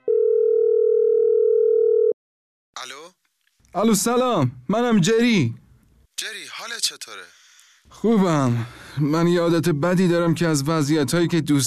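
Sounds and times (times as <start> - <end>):
steady low telephone tone: 0.0 - 2.2
speech: 3.7 - 5.6, 6.2 - 11.6.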